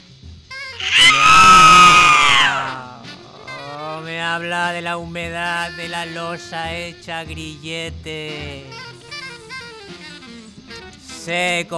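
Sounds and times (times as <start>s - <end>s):
person screaming: 0.8s - 3.1s
speech: 4.4s - 8.9s, 11.2s - 11.7s.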